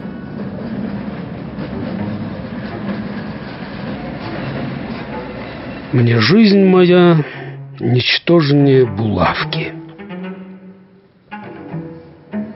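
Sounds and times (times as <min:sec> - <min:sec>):
tram wheels clattering on rails: 0:00.0 - 0:07.1
tram rumbling along an empty street: 0:00.0 - 0:12.5
speech: 0:05.9 - 0:09.8.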